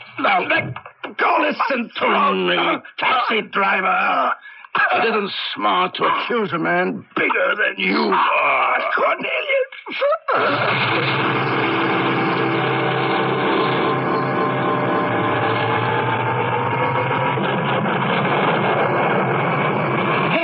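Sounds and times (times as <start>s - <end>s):
speech: 0.4s - 11.5s
tea machine running with a dense whirring hum: 10.6s - 20.4s.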